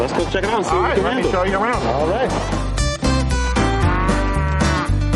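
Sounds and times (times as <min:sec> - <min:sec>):
speech: 0:00.1 - 0:02.7
cows lowing in a rotary milking parlor on a dairy farm: 0:03.6 - 0:05.0.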